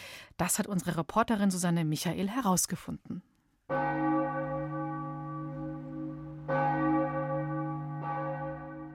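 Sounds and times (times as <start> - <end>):
speech: 0.4 - 4.0
church bells ringing: 3.7 - 8.9.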